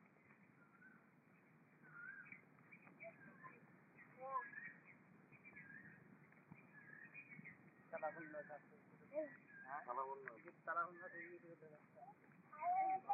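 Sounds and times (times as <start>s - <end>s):
faint cuckoo birdcalls: 0.0s - 13.1s
indistinct voices: 7.8s - 13.1s.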